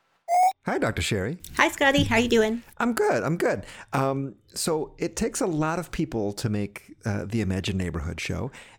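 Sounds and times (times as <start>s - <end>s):
brief higher-pitched electronic tone: 0.3s - 0.5s
speech: 0.7s - 8.7s.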